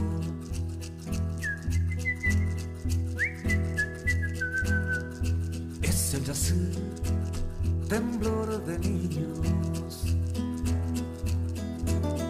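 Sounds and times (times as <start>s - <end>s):
pulsing instrumental backing music: 0.0s - 12.2s
person whistling a tune with sliding notes: 1.2s - 5.6s
speech: 6.3s - 7.1s, 7.9s - 10.1s.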